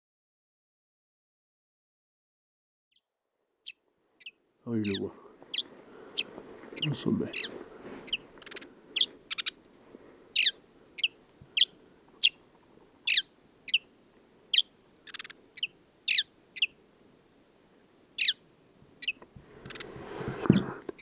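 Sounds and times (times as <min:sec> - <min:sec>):
desert sparrow chirping: 0:03.6 - 0:16.9, 0:17.9 - 0:21.0
speech: 0:04.7 - 0:05.2, 0:06.8 - 0:07.6.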